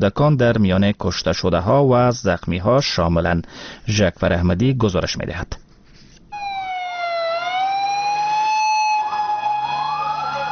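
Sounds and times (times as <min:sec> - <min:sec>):
speech: 0:00.0 - 0:05.6
ambulance siren wailing on the way to a bomb blast in Lahore: 0:06.3 - 0:10.5.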